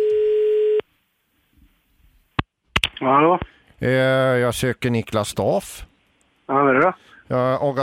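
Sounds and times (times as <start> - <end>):
telephone ringing tone: 0.0 - 0.8
sharp clicks: 2.4 - 3.5
speech: 3.0 - 5.9, 6.5 - 7.8.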